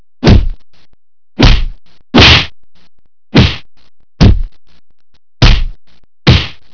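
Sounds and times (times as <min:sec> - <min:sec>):
punch in a fight: 0:00.2 - 0:00.6, 0:01.4 - 0:02.6, 0:03.3 - 0:04.6, 0:05.4 - 0:06.7.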